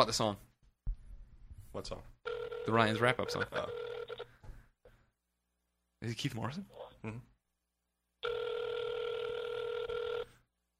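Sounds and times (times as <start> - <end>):
speech: 0.0 - 0.5, 1.8 - 3.9, 6.0 - 7.3
electronic ringback tone of an outgoing phone call through the earpiece: 2.3 - 4.3, 8.2 - 10.4.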